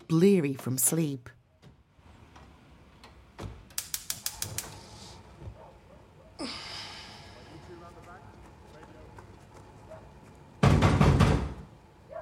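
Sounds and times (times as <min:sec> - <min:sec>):
speech: 0:00.1 - 0:01.4
loud knocking on a front door: 0:10.6 - 0:11.7.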